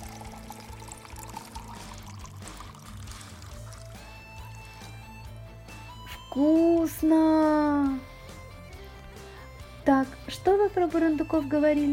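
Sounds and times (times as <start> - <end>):
cider pouring into a large mug: 0.0 - 5.1
speech: 6.3 - 8.1, 9.8 - 11.9.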